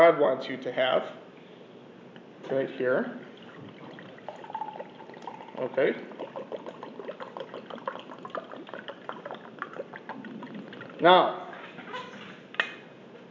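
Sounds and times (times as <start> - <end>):
speech: 0.1 - 1.2, 2.4 - 3.7, 5.6 - 6.6, 11.0 - 11.4
juice pouring into a partly filled cup: 3.2 - 11.0.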